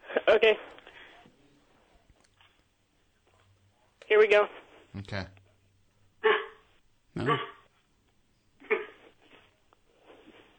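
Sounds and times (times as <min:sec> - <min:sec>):
speech: 0:00.4 - 0:00.8, 0:04.1 - 0:05.4, 0:07.2 - 0:07.6
person imitating Chihuahua barking: 0:07.2 - 0:07.6.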